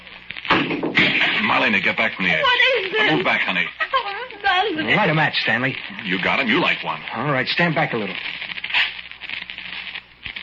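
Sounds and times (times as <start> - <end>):
steady rain falling: 1.2 - 7.6
speech: 1.6 - 8.5.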